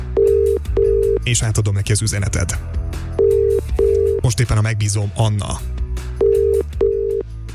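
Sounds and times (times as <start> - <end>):
electronic telephone tones: 0.2 - 1.2, 3.2 - 4.2, 6.2 - 7.2
speech: 1.2 - 2.8, 4.2 - 5.7.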